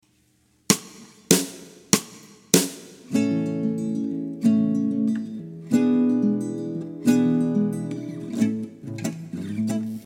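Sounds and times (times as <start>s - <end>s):
two guitars playing a milonga: 3.0s - 10.0s.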